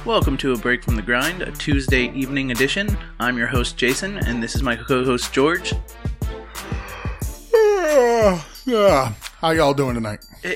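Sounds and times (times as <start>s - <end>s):
speech: 0.0s - 6.1s, 7.8s - 10.5s
drawn-out voiced yawn: 6.8s - 9.2s.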